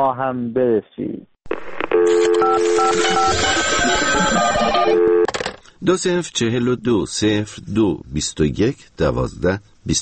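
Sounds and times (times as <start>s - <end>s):
speech: 0.0s - 1.3s, 2.0s - 10.0s
electronic telephone keypad dialing tones: 2.0s - 3.4s.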